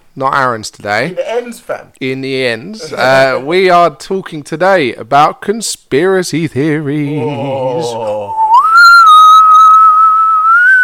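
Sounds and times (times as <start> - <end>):
speech: 0.2 - 8.4
eerie whistled note: 8.3 - 10.8.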